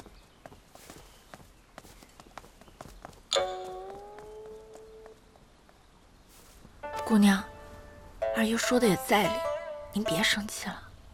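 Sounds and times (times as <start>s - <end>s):
footsteps of someone walking away: 0.0s - 7.1s
bright chime ringing: 3.3s - 4.2s
speech: 7.1s - 7.5s, 8.4s - 10.8s.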